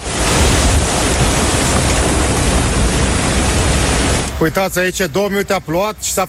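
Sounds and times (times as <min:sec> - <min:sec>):
strong storm wind roaring and buffeting the microphone: 0:00.0 - 0:04.6
speech: 0:04.4 - 0:06.2.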